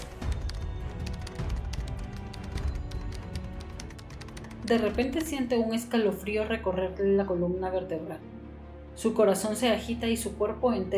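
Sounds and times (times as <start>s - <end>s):
fast typing on a computer keyboard: 0.0s - 5.5s
speech: 4.7s - 8.4s, 9.0s - 10.9s.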